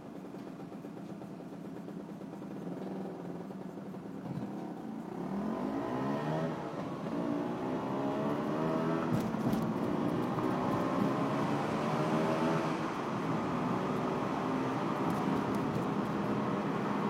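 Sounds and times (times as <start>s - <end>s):
small motor scooter engine humming as the rider throttles: 0.0s - 17.0s.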